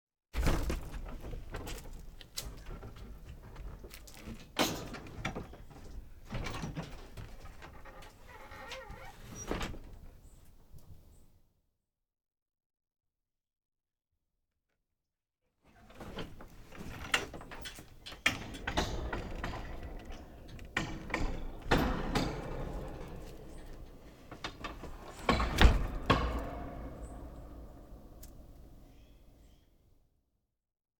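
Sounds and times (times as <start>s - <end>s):
garage door: 0.4s - 10.4s, 15.7s - 29.6s.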